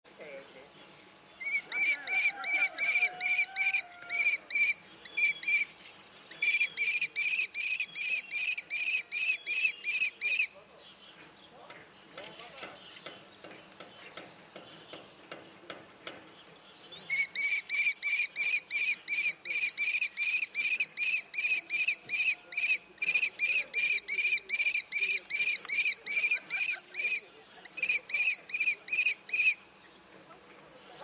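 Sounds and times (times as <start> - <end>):
kestrel calling: 1.4 - 10.6, 17.1 - 29.7.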